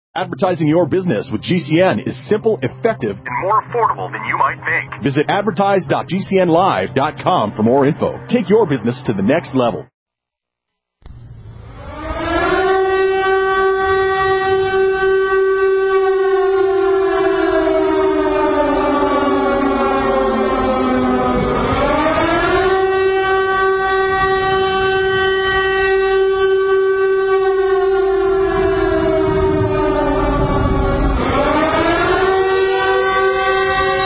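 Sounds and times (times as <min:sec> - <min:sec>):
speech: 0:00.2 - 0:09.9
loud sustained siren wailing: 0:11.4 - 0:34.0.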